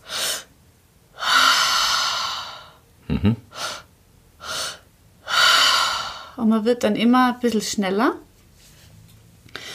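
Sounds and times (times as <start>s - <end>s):
person breathing deeply into belly and chest, exhaling through the mouth: 1.2s - 2.8s, 3.5s - 6.4s, 9.6s - 9.7s
short murmured hum: 3.1s - 3.4s
speech: 3.1s - 3.6s, 6.4s - 8.3s.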